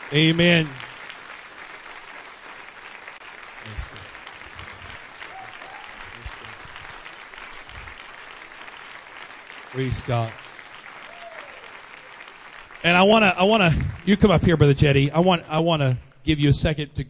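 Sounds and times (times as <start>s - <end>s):
audience clapping in appreciation: 0.0s - 16.4s
speech: 0.1s - 0.8s, 9.8s - 10.4s, 12.8s - 17.0s.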